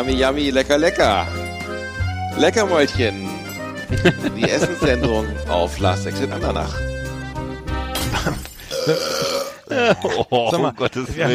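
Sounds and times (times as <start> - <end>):
speech: 0.0 - 1.4, 2.4 - 3.3, 3.9 - 6.9, 8.2 - 11.3
laughter: 3.9 - 5.5, 8.1 - 11.3
loud burp sound samples: 8.1 - 9.7.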